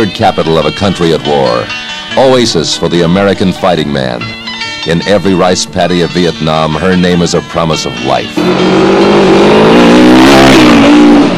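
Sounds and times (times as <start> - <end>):
speech: 0.0 - 11.3
constant roar of motors on a busy street: 5.8 - 11.3
vehicle engines revving in dense traffic: 8.0 - 11.3.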